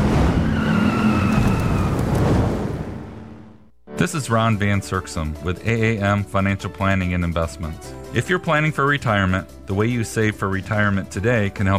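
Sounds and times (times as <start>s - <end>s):
tires squealing: 0.0s - 2.4s
car engines roaring: 0.0s - 3.6s
speech: 4.0s - 11.7s.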